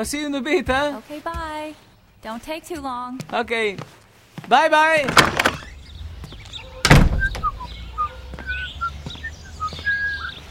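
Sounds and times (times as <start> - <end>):
speech: 0.0 - 5.6
door thudding shut: 5.0 - 5.8, 6.8 - 7.7
bird chirping with short bright tweets: 5.2 - 10.4.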